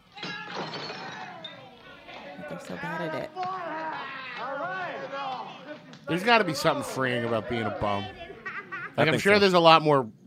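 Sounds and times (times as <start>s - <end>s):
glass bottle shattering when struck in glass bottle baseball: 0.1s - 1.6s
glass shards tinkling and ringing: 0.1s - 1.8s
speech: 2.5s - 3.8s, 6.1s - 8.2s, 9.0s - 10.2s
laughter: 3.5s - 9.4s.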